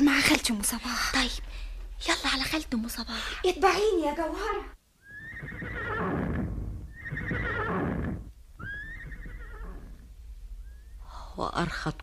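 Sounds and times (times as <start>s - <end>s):
speech: 0.3s - 4.8s, 11.4s - 12.0s
horse neighing as it is ridden off at a gallop: 5.0s - 10.0s
galloping horse hoofbeats rumbling: 5.2s - 10.6s.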